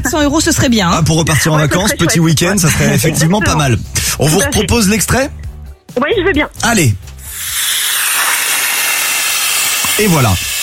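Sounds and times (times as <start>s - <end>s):
speech: 0.1s - 7.6s, 10.0s - 10.5s
small train braking as it arrives at a station: 7.2s - 10.6s.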